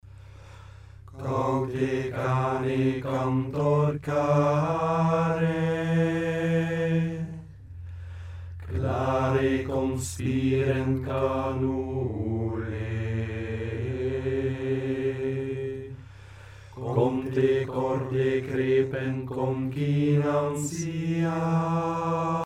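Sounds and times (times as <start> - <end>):
Gregorian chant: 1.1 - 7.7, 8.6 - 22.4.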